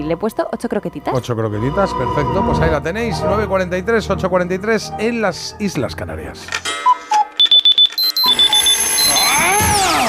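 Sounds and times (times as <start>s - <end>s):
speech: 0.0s - 6.9s
electronic alarm clock beeping: 6.7s - 9.8s.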